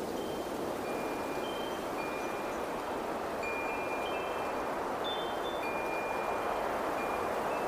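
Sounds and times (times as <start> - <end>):
wind chimes ringing: 0.2 - 7.6.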